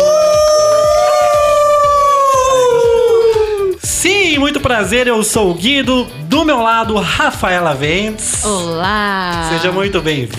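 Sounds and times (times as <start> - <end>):
people imitating a wolf howl: 0.0 - 3.8
speech: 4.7 - 10.3.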